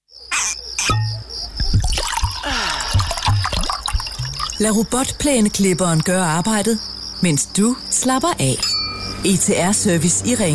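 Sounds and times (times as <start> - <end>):
water dripping in an underground cave: 0.9 - 6.1
stream water trickling and splashing in an underground cave: 1.5 - 5.5
speech: 4.6 - 10.5.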